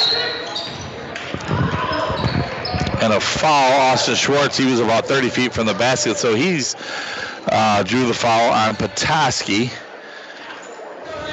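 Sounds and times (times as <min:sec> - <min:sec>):
steady crowd noise and voices at a basketball game: 0:00.0 - 0:11.3
basketball dribbling on a court during a game: 0:00.6 - 0:03.4
speech: 0:03.0 - 0:09.8.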